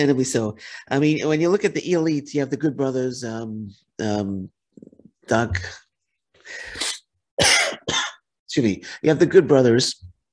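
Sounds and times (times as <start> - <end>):
speech: 0.0 - 5.8, 8.5 - 10.1
person coughing in harsh throaty bursts: 6.8 - 8.2.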